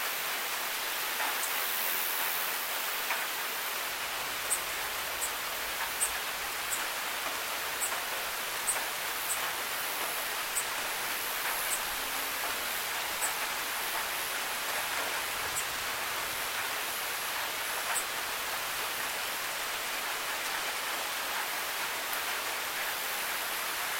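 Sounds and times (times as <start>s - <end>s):
calm night rain: 0.0s - 23.9s
bugs chirping at night: 4.0s - 18.2s.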